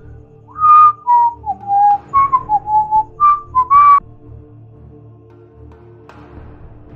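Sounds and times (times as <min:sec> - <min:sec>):
person whistling a short melodic tune behind a rock: 0:00.5 - 0:04.0.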